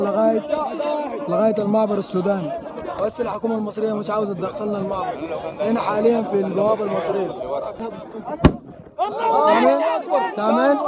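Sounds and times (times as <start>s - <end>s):
speech: 0.0s - 10.8s
single gunshot from a weapon fired at a border gate: 8.4s - 8.9s.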